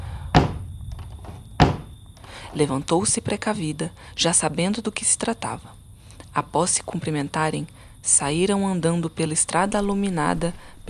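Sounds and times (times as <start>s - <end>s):
faint steady hum: 0.0s - 10.8s
firm knocks on a window: 0.4s - 0.6s, 1.6s - 1.9s
speech: 2.5s - 5.8s, 6.4s - 10.8s.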